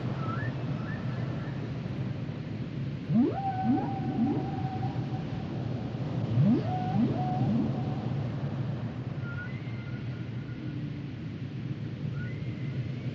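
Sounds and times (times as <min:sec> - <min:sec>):
constant low noise: 0:00.0 - 0:13.1
whale song in Nueva Esparta: 0:03.1 - 0:10.9, 0:12.1 - 0:13.1.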